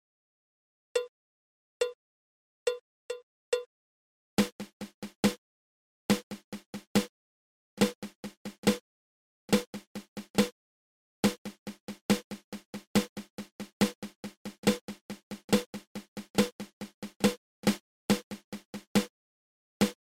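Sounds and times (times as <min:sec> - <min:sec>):
flam paradiddle drum rudiment: 0:04.4 - 0:05.4, 0:06.1 - 0:07.1, 0:07.8 - 0:08.8, 0:09.5 - 0:10.5, 0:11.2 - 0:19.1, 0:19.8 - 0:20.0.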